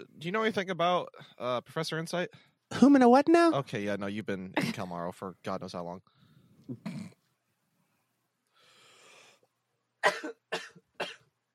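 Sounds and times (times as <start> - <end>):
speech: 0.0 - 7.1
person coughing harshly from smoke inhalation: 4.6 - 4.9, 6.7 - 7.2, 10.0 - 11.3
raspy breathy wheeze: 8.5 - 9.5.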